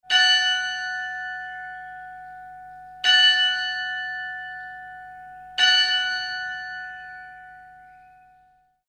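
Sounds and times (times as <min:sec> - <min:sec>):
carillon bells ringing in Brno: 0:00.0 - 0:08.8.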